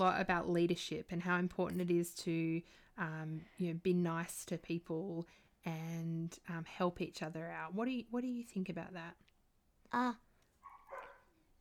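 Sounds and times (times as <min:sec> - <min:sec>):
speech: 0:00.0 - 0:09.2, 0:09.9 - 0:10.2
dog whining yelp: 0:10.6 - 0:11.3
dog barking: 0:10.6 - 0:11.4.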